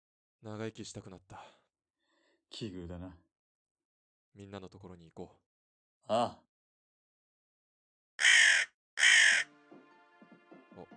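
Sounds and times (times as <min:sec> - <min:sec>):
speech: 0:00.4 - 0:01.6, 0:02.5 - 0:03.3, 0:04.4 - 0:06.5
crow cawing: 0:08.2 - 0:09.5.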